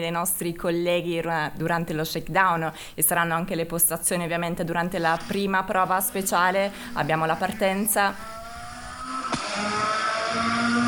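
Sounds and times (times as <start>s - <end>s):
speech: 0.0s - 8.4s
rally car engines revving: 5.1s - 10.8s.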